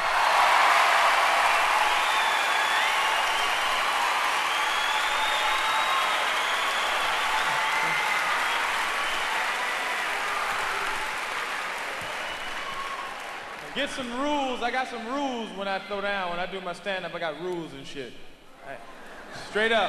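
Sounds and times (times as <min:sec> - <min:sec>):
applause from a large crowd: 0:00.0 - 0:14.8
faint cheers: 0:00.0 - 0:16.2
speech: 0:13.8 - 0:19.8.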